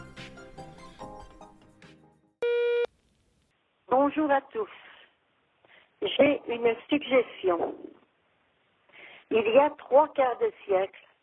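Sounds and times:
music: 0:00.0 - 0:02.4
loud steady electronic beep: 0:02.4 - 0:02.9
speech: 0:04.1 - 0:04.9, 0:06.0 - 0:08.0, 0:09.3 - 0:11.0.

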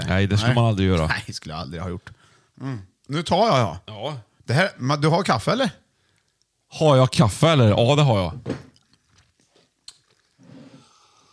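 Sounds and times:
speech: 0:00.1 - 0:05.8, 0:06.7 - 0:08.7
wet chewing with crunchy bites: 0:08.7 - 0:10.6.

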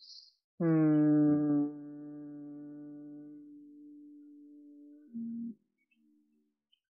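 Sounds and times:
person humming a long steady low note during a body-awareness exercise: 0:00.6 - 0:05.6.

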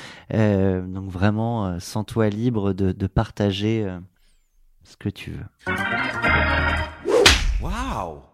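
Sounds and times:
speech: 0:00.3 - 0:04.1, 0:04.9 - 0:08.3
sharp loud slap sound effect: 0:07.1 - 0:07.8.

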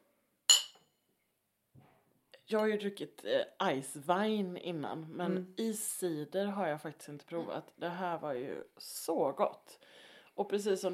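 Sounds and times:
two glasses clinking in a toast: 0:00.5 - 0:00.8
speech: 0:02.5 - 0:10.9.

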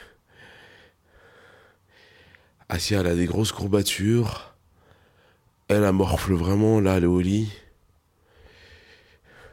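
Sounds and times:
heavy laboured wheezy breathing from a sick person: 0:00.0 - 0:02.6, 0:08.2 - 0:09.5
speech: 0:02.7 - 0:04.5, 0:05.7 - 0:07.6.

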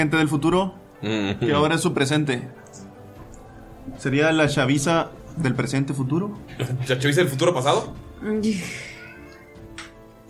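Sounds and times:
speech: 0:00.0 - 0:02.8, 0:03.9 - 0:08.9
cat meowing: 0:08.8 - 0:09.7.

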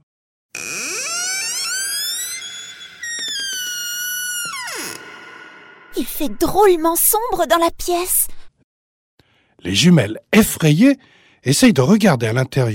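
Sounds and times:
door creaking open: 0:00.6 - 0:06.0
speech: 0:06.0 - 0:08.3, 0:09.6 - 0:12.7.

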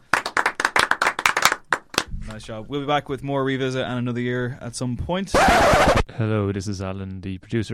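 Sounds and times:
small group applauding: 0:00.0 - 0:02.4
speech: 0:02.3 - 0:07.7.

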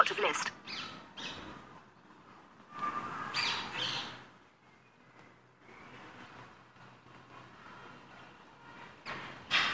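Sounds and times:
speech: 0:00.0 - 0:01.0
recorded rose-ringed parakeet squawks played back: 0:00.6 - 0:01.5, 0:02.8 - 0:04.2.

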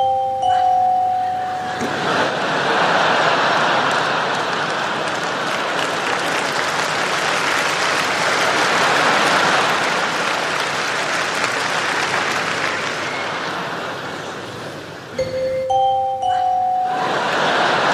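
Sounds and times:
doorbell chiming a dissonant tritone interval: 0:00.0 - 0:02.0, 0:15.2 - 0:17.4
loud crowd noise: 0:00.0 - 0:17.9
laughter: 0:01.5 - 0:14.8, 0:16.4 - 0:17.9.

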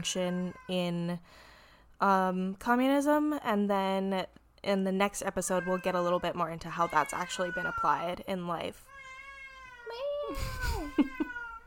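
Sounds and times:
speech: 0:00.0 - 0:08.9, 0:09.9 - 0:11.1
cat meowing: 0:08.9 - 0:11.6.

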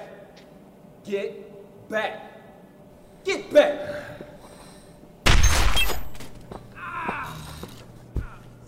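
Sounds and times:
speech: 0:01.0 - 0:02.3, 0:03.2 - 0:04.2
loud gunshot fired at a weapon held in someone's hand: 0:05.3 - 0:06.1.

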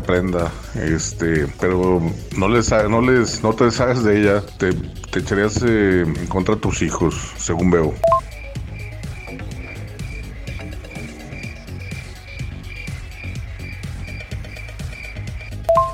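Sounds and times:
speech: 0:00.1 - 0:08.1
deeper croaking calls: 0:08.1 - 0:15.7
nighttime chorus of crickets chirping: 0:08.1 - 0:15.9.

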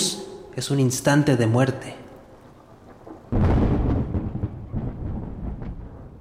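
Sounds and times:
speech: 0:00.6 - 0:02.0
rumbling thunder in a rainstorm: 0:02.7 - 0:06.1.

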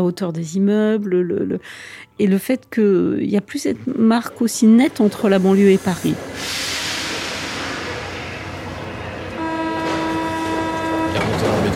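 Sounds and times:
speech: 0:00.0 - 0:06.8
metro train rumbling: 0:03.5 - 0:11.7
metro train horn-like tone: 0:09.2 - 0:11.7.

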